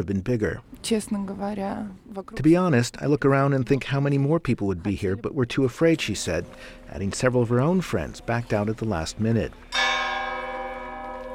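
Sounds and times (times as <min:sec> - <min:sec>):
speech: 0:00.0 - 0:09.8
church bell ringing to signal the end of a funeral service: 0:06.0 - 0:11.3.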